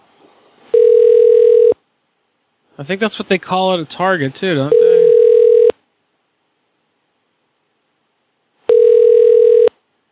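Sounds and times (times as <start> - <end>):
ringback tone of an unanswered outgoing telephone call: 0.7 - 1.8, 4.7 - 5.8, 8.7 - 9.7
speech: 2.8 - 4.9.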